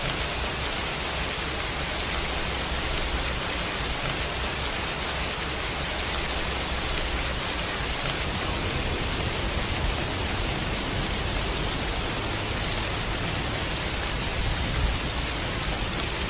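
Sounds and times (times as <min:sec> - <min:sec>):
rain falling in a steady dense hiss: 0:00.0 - 0:16.2.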